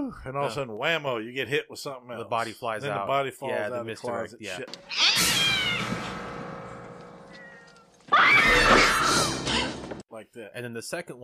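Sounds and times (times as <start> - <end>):
speech: 0.1 - 5.7, 10.2 - 11.2
shrill startled cat screech: 4.8 - 6.1, 7.3 - 9.8
cat yowling: 4.9 - 5.9, 7.4 - 9.7.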